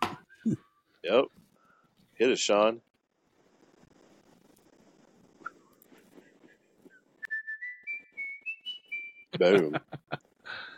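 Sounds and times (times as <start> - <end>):
speech: 0.4 - 1.4, 2.2 - 2.9, 9.4 - 10.2
whistled advertising jingle: 6.9 - 9.3
laughter: 9.4 - 10.3.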